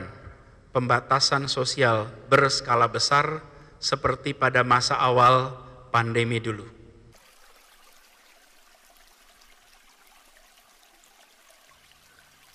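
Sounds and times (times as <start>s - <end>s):
speech: 0.8s - 6.8s
water flowing gently like a small stream: 7.1s - 12.5s.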